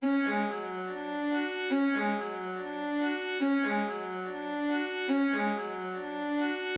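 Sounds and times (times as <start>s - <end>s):
violin loop in F sharp minor at 142 BPM: 0.0s - 6.7s.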